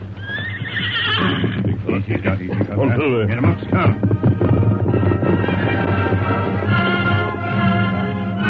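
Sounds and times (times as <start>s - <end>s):
horses ridden up a coast trail clattering: 0.0s - 8.4s
low rumble: 0.0s - 8.4s
horse whinnying: 0.1s - 1.9s.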